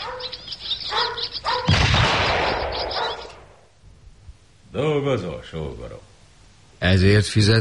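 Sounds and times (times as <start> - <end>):
starlings chattering and chirping: 0.0 - 3.8
loud gunshot fired at starlings: 1.7 - 3.6
speech: 4.7 - 6.1, 6.8 - 7.5.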